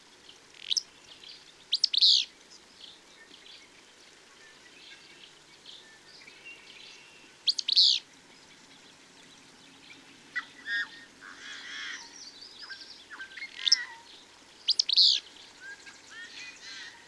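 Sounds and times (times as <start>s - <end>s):
bird song of high sharp chirps: 0.2s - 17.0s.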